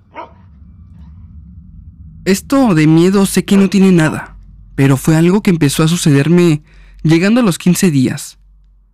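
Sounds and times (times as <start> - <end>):
several dogs barking in the distance: 0.0 - 1.4
low rumble: 0.0 - 8.9
speech: 2.2 - 8.4.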